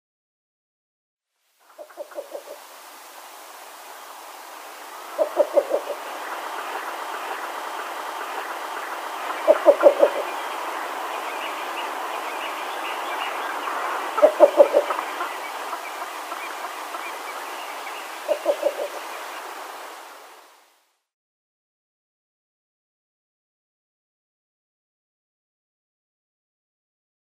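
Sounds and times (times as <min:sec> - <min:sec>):
male Least Bittern display call: 0:01.7 - 0:02.6, 0:05.0 - 0:19.2.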